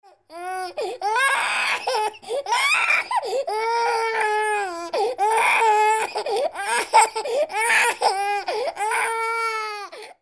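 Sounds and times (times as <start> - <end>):
baby crying: 0.0 - 10.1.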